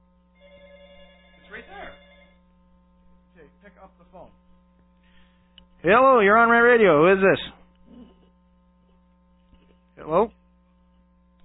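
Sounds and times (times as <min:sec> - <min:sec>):
constant low electrical hum: 0:00.0 - 0:11.4
telephone ringing through a phone line: 0:00.4 - 0:02.4
speech: 0:03.6 - 0:04.5, 0:05.8 - 0:07.4.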